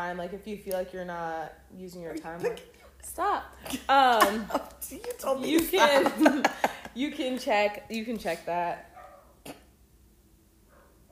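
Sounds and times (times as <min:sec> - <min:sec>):
speech: 0:00.0 - 0:09.6
low hum: 0:00.0 - 0:11.1
laughter: 0:05.5 - 0:07.0
dog barking: 0:09.0 - 0:09.4, 0:10.7 - 0:11.1.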